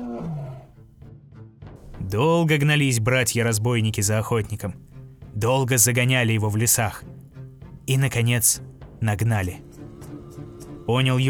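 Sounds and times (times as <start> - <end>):
tigress roaring: 0.0 - 0.8
tigress growling: 0.0 - 0.9
speech: 2.1 - 7.2, 7.9 - 9.7, 10.9 - 11.2.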